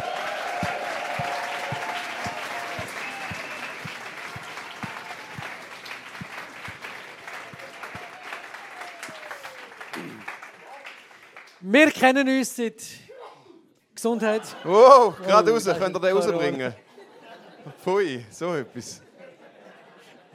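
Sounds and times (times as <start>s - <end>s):
large crowd applauding: 0.0s - 11.9s
speech: 11.7s - 13.0s, 14.0s - 16.8s, 17.8s - 19.0s
laughter: 14.2s - 20.3s.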